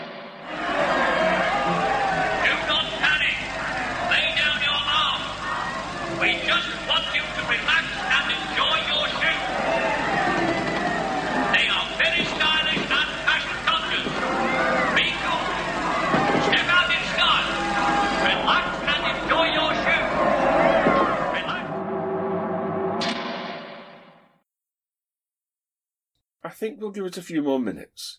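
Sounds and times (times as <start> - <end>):
large crowd behind crash barriers outside a front door murmuring and chattering: 0.5 - 21.8
scattered shouts from a crowd: 0.5 - 21.8
low steady rumble of an engine running: 0.5 - 23.0
speech: 26.9 - 28.1.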